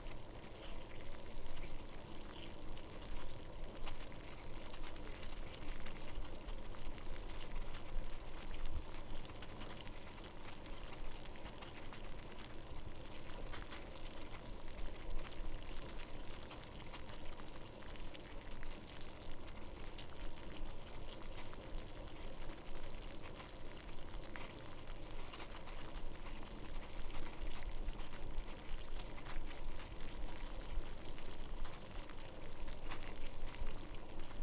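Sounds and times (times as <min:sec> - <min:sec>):
water boiling in a pot: 0:00.0 - 0:34.4.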